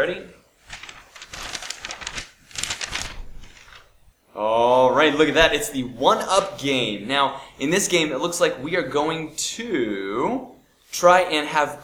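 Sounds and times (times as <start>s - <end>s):
speech: 0.0s - 0.4s, 4.4s - 11.8s
paper being unfolded and crinkled: 0.6s - 4.1s.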